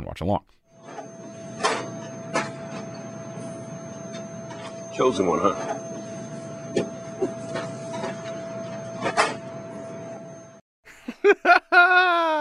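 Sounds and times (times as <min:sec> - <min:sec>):
speech: 0:00.2 - 0:00.6, 0:05.0 - 0:05.9
printer grinding and whirring with sharp clunks: 0:00.7 - 0:10.6
laughter: 0:10.9 - 0:12.3.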